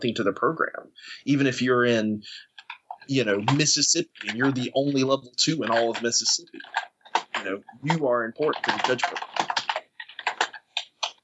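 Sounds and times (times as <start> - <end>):
speech: 0.0 - 2.5, 3.1 - 9.4
loud clacking keystrokes on a computer keyboard: 2.6 - 11.2.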